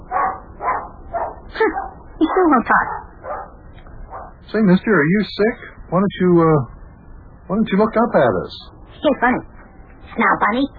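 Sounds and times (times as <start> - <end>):
dog barking: 0.0 - 4.4
speech: 2.4 - 3.0, 4.5 - 6.7, 7.5 - 9.5, 10.1 - 10.7.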